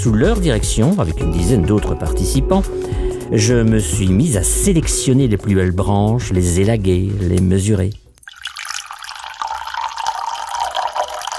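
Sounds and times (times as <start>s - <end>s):
speech: 0.0s - 8.0s
water pouring into a ceramic vase for a Japanese flower arrangement: 7.9s - 11.3s.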